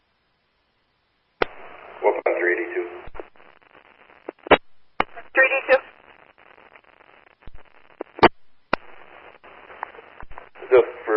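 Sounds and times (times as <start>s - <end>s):
static hiss: 0.0s - 11.1s
sharp clicks and pops: 1.4s - 1.8s, 3.0s - 10.7s
crackly narrowband vestibule intercom phone line: 1.4s - 11.1s
distorted voice through intercom: 1.9s - 3.0s, 5.1s - 5.9s, 9.8s - 11.1s.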